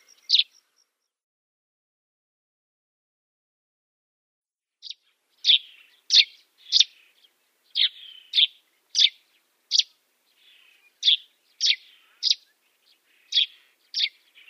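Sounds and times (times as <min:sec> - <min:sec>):
Dead Sea sparrow singing sharp chirped notes: 0:00.0 - 0:01.0, 0:04.8 - 0:14.4.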